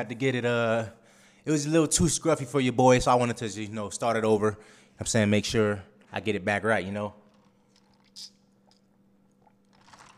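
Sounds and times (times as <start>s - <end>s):
speech: 0.0s - 7.2s, 8.2s - 8.4s
wet mouth and swallowing sounds: 7.3s - 10.1s
person slurping orange juice: 9.4s - 10.1s.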